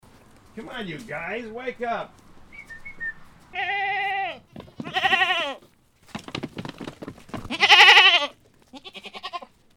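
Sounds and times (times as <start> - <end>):
goat giving loud nasal quavering bleats: 3.5 - 5.7, 7.4 - 9.6.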